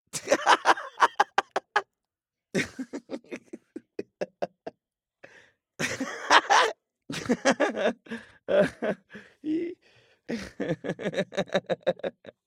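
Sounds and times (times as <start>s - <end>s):
man cackling: 0.2s - 1.8s, 2.6s - 4.8s, 5.8s - 7.9s
man giggling: 0.2s - 1.8s, 2.6s - 4.8s, 5.8s - 12.4s.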